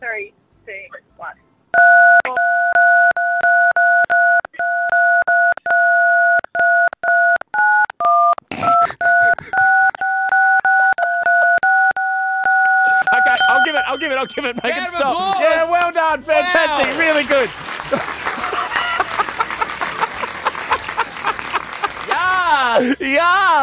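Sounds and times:
phone keypad tones playing a tune: 1.8s - 15.7s
laughter: 8.5s - 11.7s, 12.6s - 23.6s.

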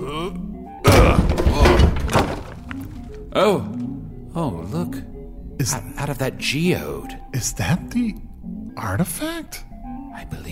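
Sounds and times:
door being knocked down with a heavy crunching crash: 0.8s - 3.3s
speech: 3.4s - 3.8s, 4.4s - 10.5s.

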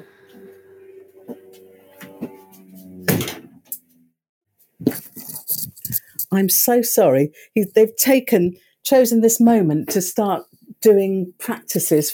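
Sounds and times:
Spitfire aeroplane engine drone flying above the shed: 0.0s - 4.0s
wooden shed door banging shut: 3.0s - 3.6s
speech: 6.3s - 12.1s.

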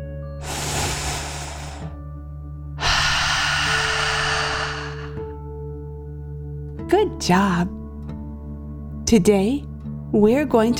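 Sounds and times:
deep breath in and out with forceful exhale: 0.4s - 2.0s, 2.8s - 5.4s
speech: 6.9s - 7.8s, 9.1s - 10.7s.

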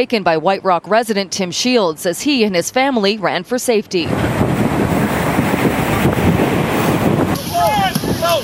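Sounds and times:
speech: 0.0s - 4.6s
storm wind buffeting the microphone: 4.0s - 8.4s
heavy waves crashing against a pier: 4.1s - 8.4s.

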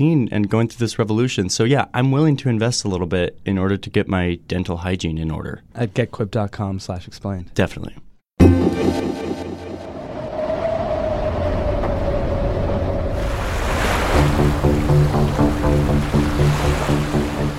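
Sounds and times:
speech: 0.0s - 9.2s
brief rising tone: 8.4s - 11.6s
rolling Pacific Ocean waves washing around a cargo ship: 8.5s - 17.5s.

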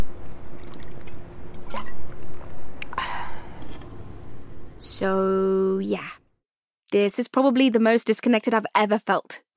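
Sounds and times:
low steady hum: 0.0s - 6.2s
water sloshing: 0.3s - 2.9s
person gulping water: 0.5s - 3.7s
speech: 5.0s - 6.2s, 6.9s - 9.5s.

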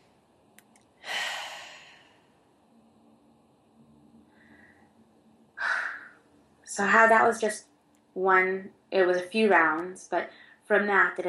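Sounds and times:
deep breath in during a guided breathing exercise: 1.0s - 2.4s, 4.3s - 5.0s
speech: 6.8s - 11.2s.

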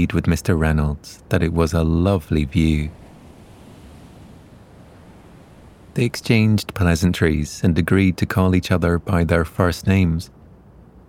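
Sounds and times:
speech: 0.0s - 3.0s, 6.0s - 10.4s
ocean surf waves washing onto shore: 1.6s - 7.4s.

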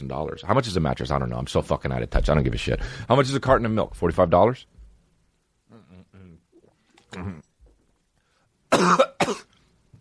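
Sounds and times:
speech: 0.0s - 4.7s, 7.1s - 7.4s, 8.7s - 9.5s
person clearing throat with short voiced grunts: 7.1s - 7.5s, 8.7s - 9.5s
person coughing harshly: 8.7s - 9.6s.

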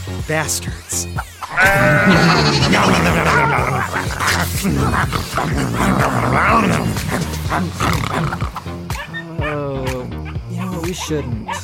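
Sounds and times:
speech: 0.2s - 8.8s, 10.9s - 11.6s
laughter: 1.4s - 8.7s
goats bleating: 1.5s - 7.1s.

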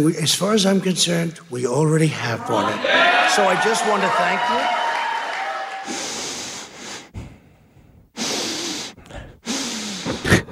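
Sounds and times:
speech: 0.0s - 4.8s
heavy deep breathing through the nose: 5.8s - 10.5s.

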